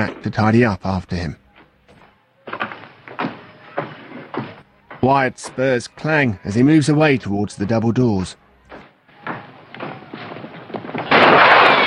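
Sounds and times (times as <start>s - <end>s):
speech: 0.0s - 1.4s, 5.0s - 8.4s
gunshots fired as pot shots: 9.2s - 11.8s.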